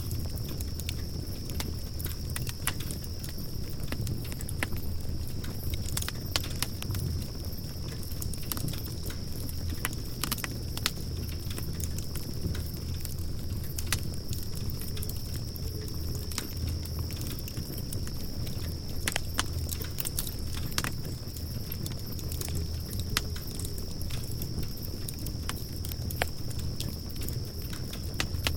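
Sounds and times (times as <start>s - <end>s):
campfire crackling: 0.0s - 28.5s.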